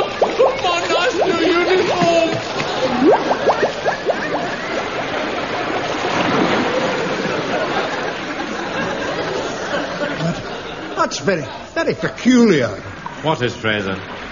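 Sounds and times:
bubbling gurgles of a sinking boat: 0.0 - 8.1
water splashing and churning as a boat sinks: 0.0 - 9.6
laughter: 0.0 - 12.6
speech: 11.2 - 14.2.

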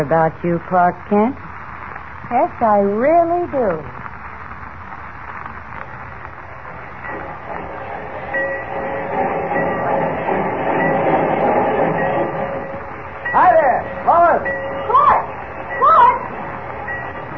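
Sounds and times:
speech: 0.0 - 1.4, 2.2 - 4.0
rumble and hum of rail traffic at a busy railroad station: 0.0 - 17.3
short wavering voice-like calls: 13.3 - 16.4.

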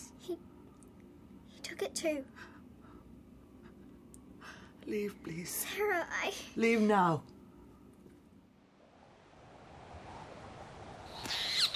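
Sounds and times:
steady hiss: 0.0 - 11.7
speech: 1.8 - 2.5, 4.9 - 7.3
storm petrel giving sharp high squealing calls: 11.0 - 11.7.

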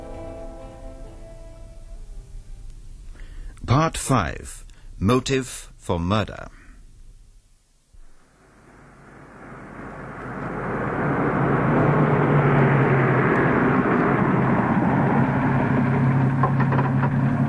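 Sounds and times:
speech: 3.7 - 6.6
police car engine rumbling: 8.2 - 17.4.

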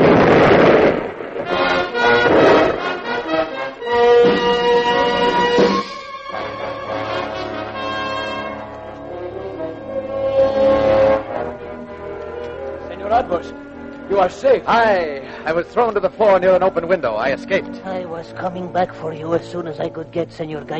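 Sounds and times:
heavy ship's cannon blasts: 0.0 - 4.8
sustained tonal musical backdrop: 1.1 - 20.7
speech: 14.2 - 20.7.

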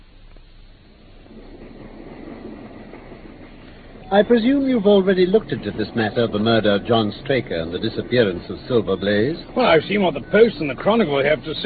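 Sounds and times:
moving train rumbling along the rails: 0.0 - 11.6
speech: 4.1 - 11.6.

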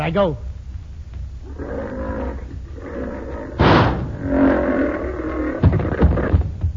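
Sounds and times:
lion roaring and growling: 1.4 - 6.6
loud crack: 3.6 - 4.2.

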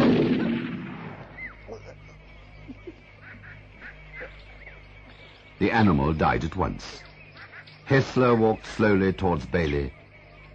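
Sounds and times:
gunshot from a gun aimed at a leopard: 0.0 - 1.3
faint scattered high calls: 1.2 - 10.5
speech: 5.6 - 7.1, 7.9 - 10.0.

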